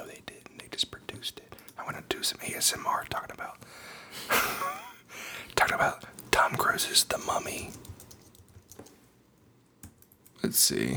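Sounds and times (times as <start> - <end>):
speech: 0.8 - 4.8, 5.6 - 7.9, 10.5 - 10.9
typing on a Mac computer keyboard: 6.4 - 9.0, 9.8 - 10.4.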